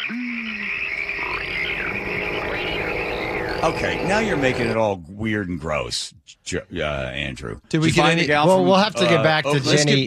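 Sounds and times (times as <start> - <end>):
low frog croak: 0.0 - 4.8
outdoor chorus of frogs calling: 0.0 - 4.8
speech: 3.6 - 10.0.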